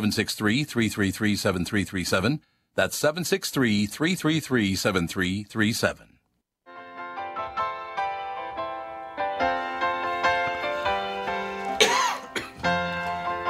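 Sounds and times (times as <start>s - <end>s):
speech: 0.0s - 6.1s
steady melodic music: 6.7s - 13.4s
man coughing: 11.8s - 12.6s.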